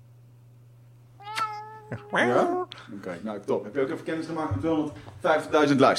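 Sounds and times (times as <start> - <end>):
steady low electrical hum: 0.0 - 5.9
pet cat meowing: 1.2 - 2.7
speech: 1.9 - 5.9.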